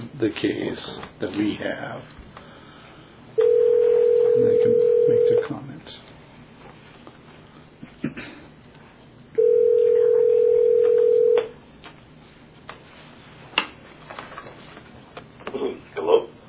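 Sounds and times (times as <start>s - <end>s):
speech: 0.2s - 2.2s, 4.4s - 6.1s
telephone conference call connecting tone: 3.4s - 5.4s, 9.4s - 11.5s.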